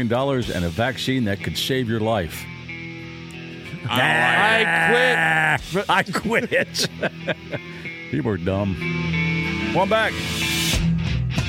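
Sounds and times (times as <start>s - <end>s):
speech: 0.0s - 2.5s, 3.8s - 10.4s
laughter: 3.7s - 8.0s
sheep bleating: 3.9s - 5.7s.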